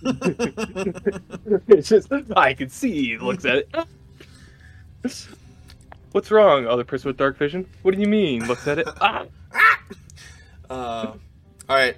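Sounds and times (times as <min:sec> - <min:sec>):
laughter: 0:00.0 - 0:01.8, 0:08.4 - 0:09.9
speech: 0:00.0 - 0:04.0, 0:05.0 - 0:05.4, 0:06.1 - 0:10.0, 0:10.7 - 0:11.9
distressed dog yelping: 0:09.5 - 0:10.0.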